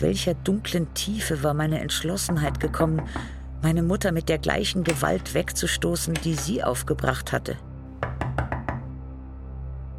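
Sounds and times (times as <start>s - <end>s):
speech: 0.0s - 7.7s
firm knocks on a door: 8.0s - 8.9s.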